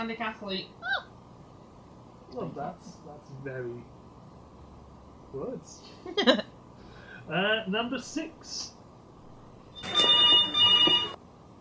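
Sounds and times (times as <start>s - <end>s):
speech: 0.0s - 1.1s, 2.3s - 4.0s, 5.3s - 6.4s, 7.3s - 8.8s, 9.8s - 10.4s
telephone ringing in bright trilling bursts: 9.7s - 11.2s.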